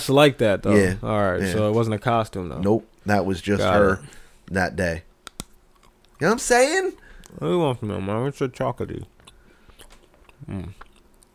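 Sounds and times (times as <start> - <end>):
speech: 0.0 - 5.1, 6.2 - 9.1, 10.4 - 10.9
chewing food: 5.5 - 6.2, 8.9 - 11.3
person murmuring or humming: 10.4 - 10.8.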